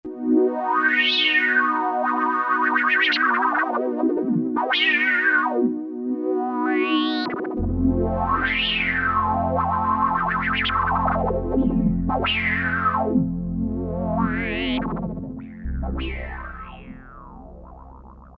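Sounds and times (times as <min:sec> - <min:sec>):
synth pad on an E-mu Morpheus: 0:00.1 - 0:18.3.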